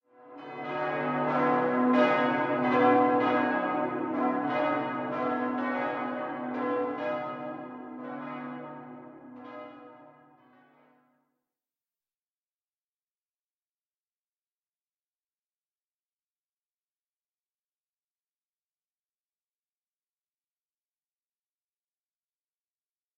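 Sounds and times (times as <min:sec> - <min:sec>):
bells ringing: 0:00.4 - 0:10.0.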